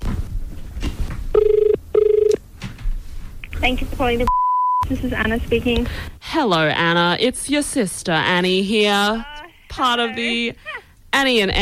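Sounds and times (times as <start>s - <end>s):
telephone ringing on an outgoing call through a handset: 1.4s - 2.4s
speech: 3.6s - 11.5s.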